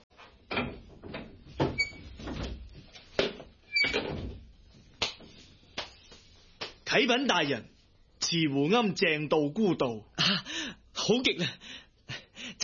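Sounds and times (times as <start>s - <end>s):
door creak: 0.5s - 2.6s, 3.7s - 4.4s
speech: 6.9s - 7.7s, 8.3s - 11.7s.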